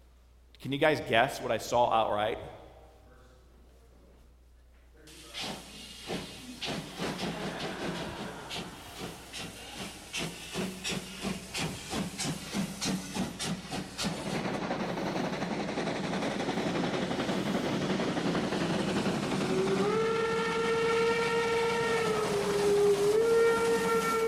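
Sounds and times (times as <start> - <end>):
speech: 0.6 - 2.6
steam train chugging: 5.1 - 24.2
long steam train whistle: 6.6 - 10.2, 19.4 - 24.2.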